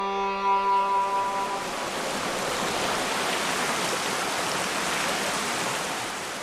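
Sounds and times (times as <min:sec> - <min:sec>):
water rushing over a river weir: 0:00.1 - 0:06.4.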